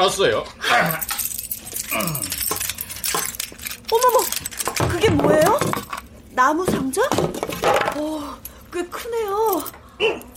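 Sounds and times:
speech: 0.0 - 1.1, 1.9 - 2.3, 3.9 - 5.8, 6.4 - 10.3
metal keys jangling: 0.7 - 6.0, 8.4 - 10.3.

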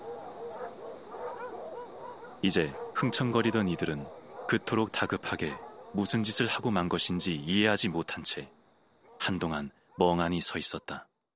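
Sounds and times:
pack of hunting dogs barking and baying: 0.0 - 6.5, 9.0 - 10.0
speech: 2.4 - 8.6, 9.2 - 11.1.

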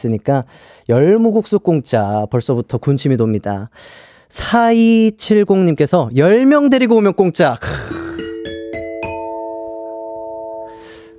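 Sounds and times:
speech: 0.0 - 8.0
ding-dong-dang chime of rising bell notes: 8.2 - 11.1.

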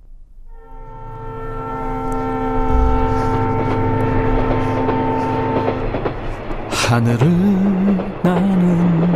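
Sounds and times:
rumble of a moving train: 0.0 - 9.1
train horn long steady multi-tone whistle: 0.4 - 7.8
speech: 6.9 - 8.8.

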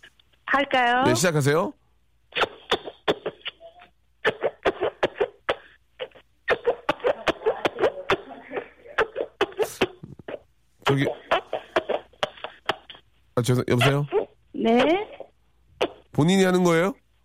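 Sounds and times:
speech: 0.6 - 2.5, 11.0 - 11.2, 13.4 - 15.1, 16.2 - 17.0
three-part fart noises made with the palms of the hands: 2.4 - 8.2, 9.0 - 13.0, 15.8 - 16.1.

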